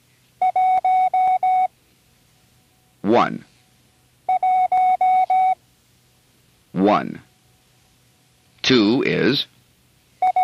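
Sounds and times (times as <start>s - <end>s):
Morse code tone keyed for the number one: 0.4s - 1.7s, 4.3s - 5.6s, 10.2s - 10.4s
speech: 3.1s - 3.5s, 6.8s - 7.3s, 8.7s - 9.6s.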